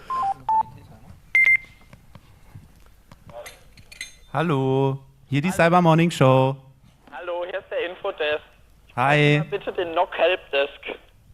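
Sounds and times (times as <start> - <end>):
electronic telephone beeps signalling an incoming call: 0.0 - 0.7, 1.4 - 1.7
quiet noise: 0.0 - 11.3
speech: 4.4 - 6.6, 9.0 - 10.9.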